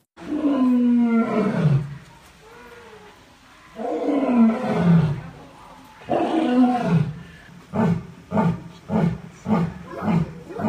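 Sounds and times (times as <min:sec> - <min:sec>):
male Asiatic lion roaring at a zoo in Zurich: 0:00.2 - 0:02.0, 0:03.8 - 0:05.3, 0:06.1 - 0:10.6.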